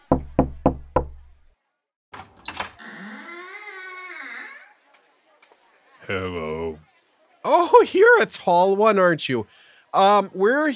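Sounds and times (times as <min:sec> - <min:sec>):
knocking on a door: 0:00.0 - 0:01.4
long wavering creak-like sound: 0:02.2 - 0:04.7
speech: 0:06.1 - 0:10.7.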